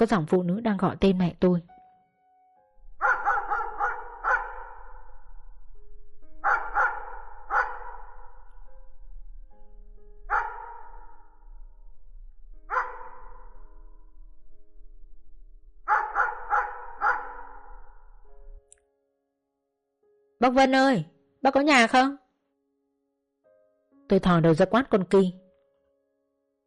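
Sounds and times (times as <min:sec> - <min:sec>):
speech: 0:00.0 - 0:01.7, 0:20.4 - 0:22.2, 0:24.1 - 0:25.4
dog barking in a yard: 0:03.0 - 0:05.1, 0:06.4 - 0:08.5, 0:10.3 - 0:11.3, 0:12.7 - 0:13.6, 0:15.9 - 0:17.9.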